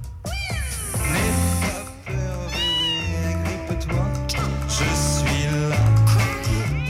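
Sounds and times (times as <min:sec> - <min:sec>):
music with a low pulsing bass: 0:00.0 - 0:06.8
cat meowing: 0:00.2 - 0:01.1, 0:02.4 - 0:03.4, 0:06.4 - 0:06.8.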